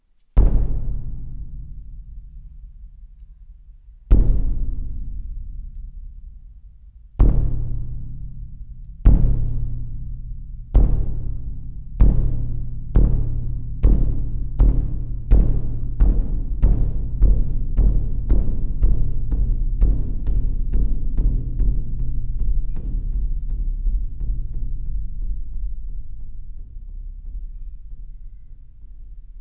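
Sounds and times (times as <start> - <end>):
big Japanese drum: 0.4 - 29.4.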